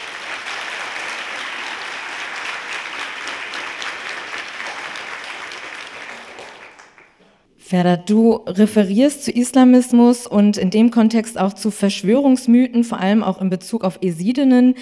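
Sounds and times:
audience applause welcoming a speaker: 0:00.0 - 0:07.4
speech: 0:07.7 - 0:14.8.

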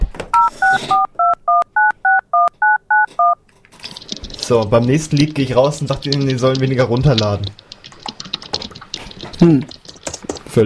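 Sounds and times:
telephone keypad touch-tone beeps dialing a number: 0:00.4 - 0:03.4
speech: 0:04.5 - 0:07.7, 0:09.4 - 0:09.8.

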